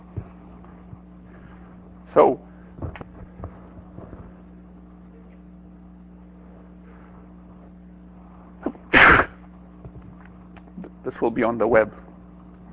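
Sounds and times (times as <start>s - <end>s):
steady low hum: 0.0s - 12.7s
speech: 2.1s - 2.4s, 11.2s - 12.0s
sneeze: 8.6s - 9.4s.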